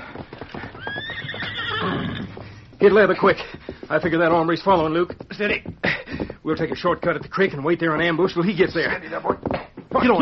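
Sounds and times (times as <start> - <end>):
horse hooves clip-clopping: 0.0 - 10.2
horse whinnying: 0.3 - 2.7
speech: 2.8 - 5.8, 6.4 - 10.2.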